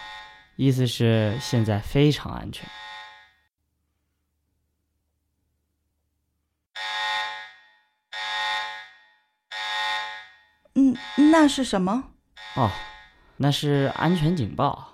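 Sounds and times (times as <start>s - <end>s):
public safety alarm buzzing: 0.0s - 3.5s, 6.8s - 11.8s, 12.4s - 14.4s
person talking: 0.6s - 2.7s, 10.7s - 12.8s, 13.4s - 14.9s.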